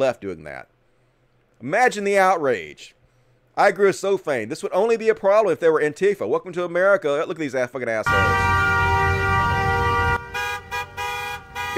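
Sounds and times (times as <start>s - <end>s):
speech: 0.0s - 0.8s, 1.6s - 3.0s, 3.6s - 8.6s
car horns honking at a protest: 8.1s - 11.7s.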